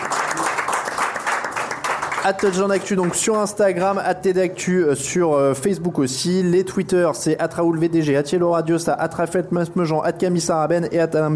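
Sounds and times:
crowd applauding: 0.0s - 4.0s
speech: 2.2s - 11.3s.

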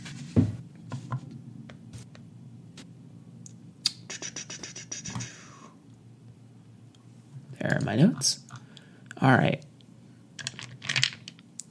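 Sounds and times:
speech: 7.9s - 8.4s, 9.2s - 9.6s
dice rolling: 10.4s - 11.4s.

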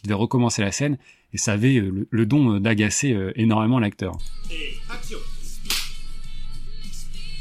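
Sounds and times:
speech: 0.0s - 5.3s
sharp loud slap across the face: 5.6s - 6.0s.

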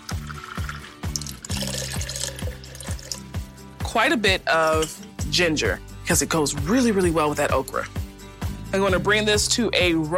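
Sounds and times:
water pouring into a stew pot: 0.0s - 3.4s
speech: 3.9s - 8.0s, 8.7s - 10.1s.

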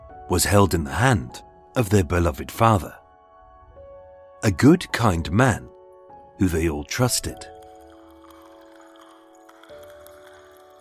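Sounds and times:
speech: 0.3s - 3.0s, 4.4s - 5.7s, 6.4s - 7.5s
liquid pouring into a cup: 7.1s - 10.7s.

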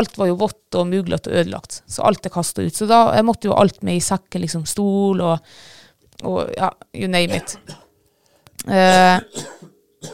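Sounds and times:
speech: 0.0s - 7.8s, 8.6s - 10.1s
person coughing with a lingering cough: 7.3s - 7.9s, 8.9s - 10.1s.

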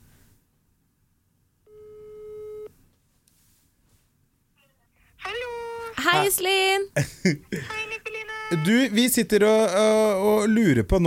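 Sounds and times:
electronic telephone ringback tone: 1.7s - 2.7s
speech: 6.2s - 11.0s
laughter: 7.0s - 7.8s.

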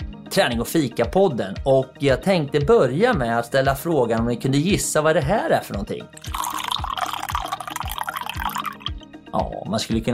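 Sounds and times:
speech: 0.3s - 6.5s, 9.4s - 10.1s
freshly brewed coffee being poured: 6.2s - 8.9s.

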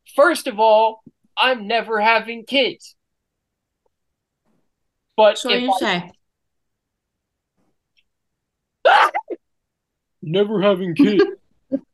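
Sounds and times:
speech: 0.2s - 3.0s, 5.2s - 6.2s, 10.2s - 11.9s
person sneezing: 8.9s - 9.4s
laughter: 10.8s - 11.4s.

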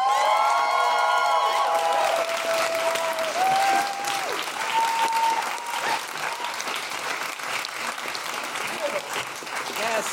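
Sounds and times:
audience whooping at a comedy show: 0.0s - 6.9s
audience clapping at a comedy show: 0.0s - 10.1s.

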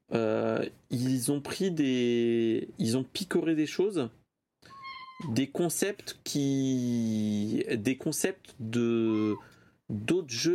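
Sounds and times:
speech: 0.6s - 4.2s, 5.2s - 10.5s
cat meowing: 4.7s - 5.4s.

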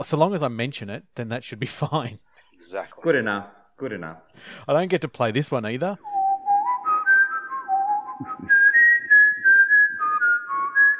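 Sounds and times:
speech: 0.0s - 6.1s
whistle blown in a wavering melody: 6.0s - 10.9s.

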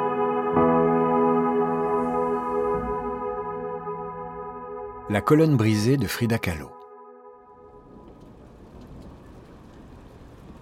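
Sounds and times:
sustained musical tone: 0.0s - 8.7s
speech: 5.1s - 6.8s
steady rain pouring down: 7.6s - 10.6s.

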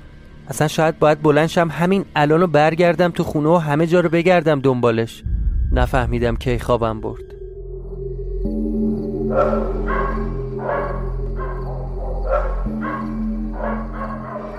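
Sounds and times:
speech: 0.5s - 7.3s, 9.3s - 9.8s
constant low droning hum: 5.2s - 14.3s
dogs barking: 9.2s - 14.5s.

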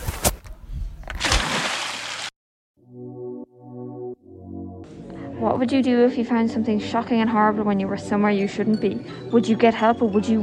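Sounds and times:
water splashing and sloshing as a boy falls into the sea: 1.0s - 2.3s
speech: 5.4s - 10.4s.

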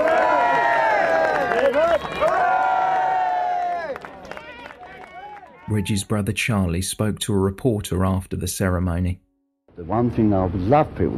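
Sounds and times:
many overlapping voices shouting and whooping: 0.0s - 6.1s
crowd cheering loudly for a man leaving to go back to prison: 0.0s - 6.3s
speech: 5.7s - 9.2s, 9.8s - 11.1s.

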